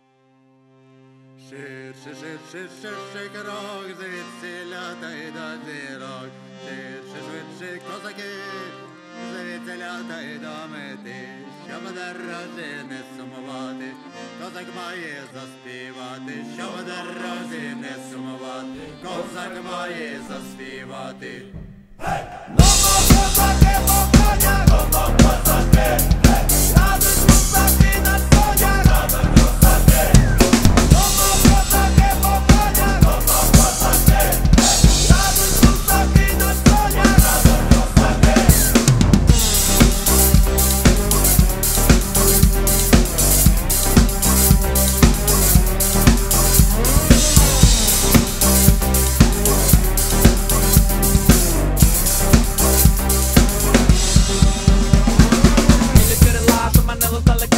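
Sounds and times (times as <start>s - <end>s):
drums playing a cover: 21.6s - 57.5s.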